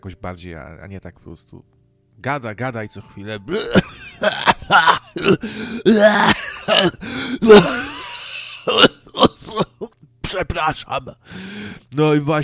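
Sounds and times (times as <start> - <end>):
speech: 0.0 - 7.9, 9.6 - 12.4
person coughing into microphone: 3.5 - 10.0
throat clearing into microphone: 3.5 - 10.0.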